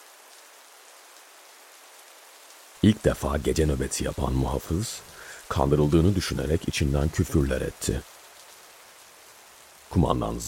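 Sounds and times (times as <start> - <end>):
steady rain pouring down: 0.0 - 10.4
speech: 2.8 - 8.1, 10.0 - 10.4.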